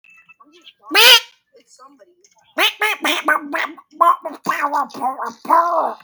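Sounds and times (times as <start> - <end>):
duck quacking: 0.9 - 1.3, 2.6 - 4.8.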